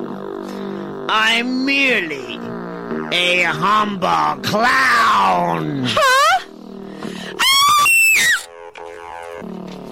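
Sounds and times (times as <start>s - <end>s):
speech: 1.1s - 6.4s
person screaming: 7.3s - 8.5s.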